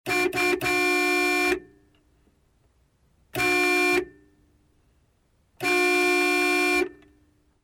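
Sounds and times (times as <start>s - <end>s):
Honda Civic car horn: 0.0s - 1.8s, 3.4s - 4.2s, 5.6s - 7.1s.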